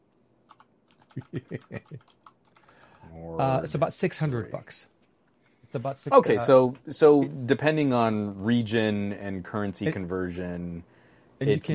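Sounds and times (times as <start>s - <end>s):
typing on a computer keyboard: 0.5s - 3.0s
speech: 1.2s - 2.2s, 3.1s - 5.0s, 5.7s - 11.7s.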